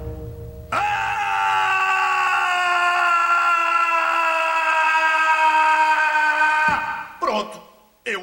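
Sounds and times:
loud drawn-out scream used as a sonic wave: 0.7s - 7.2s.

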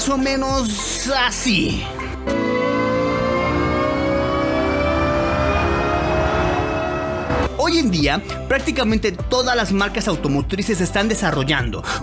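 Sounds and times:
speech: 0.1s - 2.7s, 7.7s - 12.0s
electric car pedestrian warning sound of layered synthetic tones: 2.2s - 7.5s.

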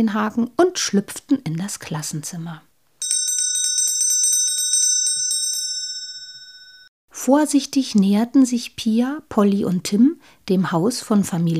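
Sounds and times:
speech: 0.0s - 2.7s, 7.2s - 11.5s
electric school bell ringing to signal the start of a lesson: 3.0s - 6.9s.

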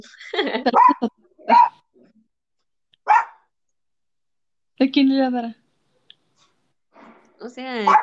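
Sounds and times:
laughter: 0.0s - 1.2s
speech: 0.0s - 1.6s, 4.8s - 5.6s, 7.4s - 8.0s
small female pet dog barking: 0.7s - 1.8s, 3.0s - 3.4s, 7.8s - 8.0s.

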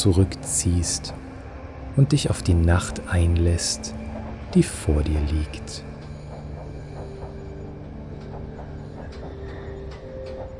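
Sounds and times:
speech: 0.0s - 1.2s, 2.0s - 5.9s
steam locomotive train rumbling along rails: 0.0s - 10.5s
train wheel clicks over rail joints: 4.9s - 10.5s.

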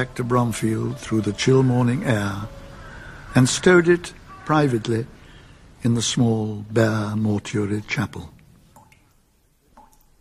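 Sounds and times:
speech: 0.0s - 2.6s, 3.3s - 5.2s, 5.8s - 8.4s
water dripping from melting ice: 8.2s - 10.1s.

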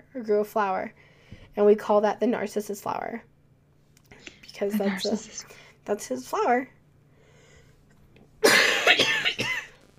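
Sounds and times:
speech: 0.2s - 3.3s, 4.6s - 6.8s
person coughing: 8.4s - 9.7s.

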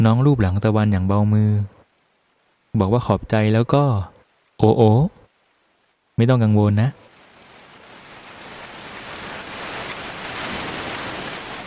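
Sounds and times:
speech: 0.0s - 1.8s, 2.8s - 5.2s, 6.2s - 7.0s
steady rain pouring down: 0.0s - 11.6s.

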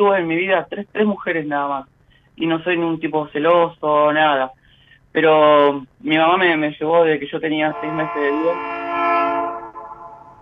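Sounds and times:
speech: 0.0s - 8.8s
train horn blaring as a train passes: 7.6s - 10.3s.

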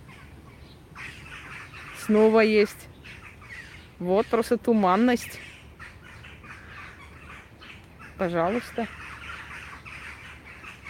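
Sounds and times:
steady outdoor noise: 0.0s - 10.8s
crow cawing harshly: 1.0s - 3.9s, 5.2s - 10.8s
speech: 2.1s - 2.9s, 4.0s - 5.5s, 8.2s - 9.0s.

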